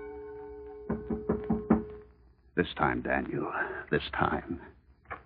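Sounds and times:
knocking on a wooden door: 0.9 - 2.0
speech: 2.6 - 4.7.

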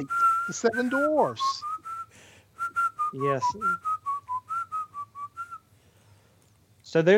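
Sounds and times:
speech: 0.0 - 1.7, 3.1 - 3.9, 6.9 - 7.1
person whistling a short bouncy melody: 0.0 - 5.7.

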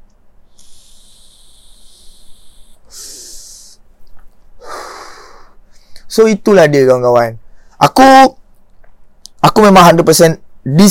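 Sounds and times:
low steady hum: 0.0 - 10.9
inhaling drags from a pod vape: 0.5 - 3.8, 4.6 - 5.6
speech: 6.1 - 8.4, 9.5 - 10.9.

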